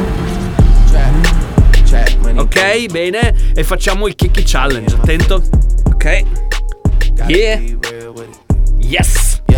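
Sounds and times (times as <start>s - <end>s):
car engine starting and revving: 0.0s - 6.5s
speech: 2.6s - 6.5s, 7.2s - 8.3s, 8.9s - 9.4s.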